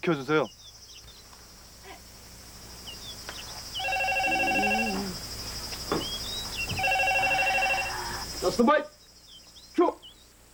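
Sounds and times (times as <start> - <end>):
speech: 0.0 - 0.6, 8.5 - 9.0
steady hum: 0.0 - 10.5
telephone ringing with electronic trilling bursts: 3.7 - 5.2, 6.5 - 8.6.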